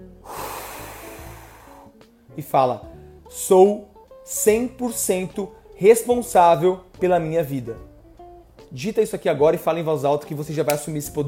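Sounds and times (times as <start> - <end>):
deep breath taken during a guided exercise: 0.2 - 2.0
speech: 2.4 - 7.9, 8.7 - 11.2.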